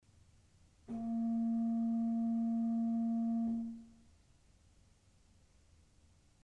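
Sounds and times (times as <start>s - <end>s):
Principal 4' organ pipe sounding A sharp: 0.9s - 3.9s.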